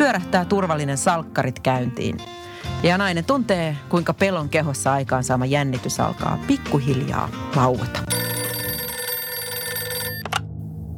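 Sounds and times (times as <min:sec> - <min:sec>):
speech: 0:00.1 - 0:08.2
telephone ringing with a metallic bell tone: 0:08.1 - 0:10.4.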